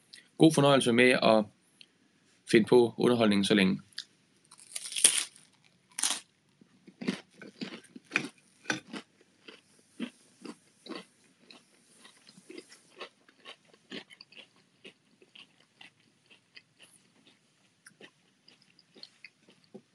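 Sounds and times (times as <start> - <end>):
speech: 0.4 - 1.6, 2.5 - 3.9
chewing and crunching crispbread: 4.4 - 19.9.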